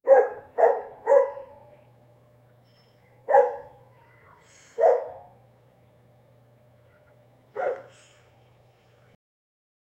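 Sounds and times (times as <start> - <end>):
dog barking: 0.0 - 1.6, 3.3 - 3.8, 4.8 - 5.4, 7.5 - 8.0
faint low hum: 0.1 - 9.2.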